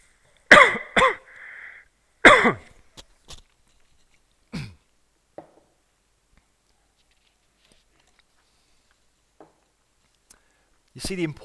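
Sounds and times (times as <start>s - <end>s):
person coughing in short harsh bursts: 0.5s - 1.4s, 2.2s - 2.8s, 4.5s - 4.8s
wheezy breath: 1.2s - 1.9s
soft throat clearing: 2.3s - 2.8s, 4.5s - 4.9s
speech: 2.4s - 2.7s, 11.0s - 11.4s.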